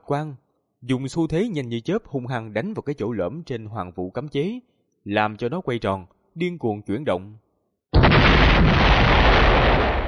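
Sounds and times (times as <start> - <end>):
speech: 0.1 - 7.4
massive thunderous explosion with sustained roar: 8.0 - 10.0.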